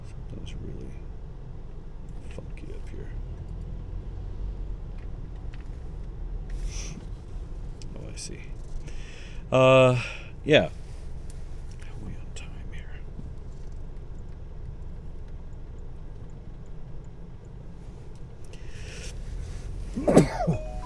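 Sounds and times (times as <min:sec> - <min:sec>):
low steady rumble: 0:00.0 - 0:20.8
faint breathy sounds: 0:08.8 - 0:10.4, 0:18.5 - 0:20.8
speech: 0:09.5 - 0:10.8
person sneezing: 0:20.0 - 0:20.8.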